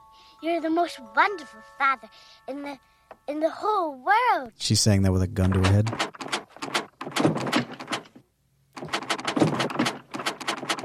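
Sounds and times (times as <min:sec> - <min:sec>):
speech: 0:00.4 - 0:07.4
peg-leg bat rattling and bumping at a door: 0:05.7 - 0:08.2, 0:08.8 - 0:10.8.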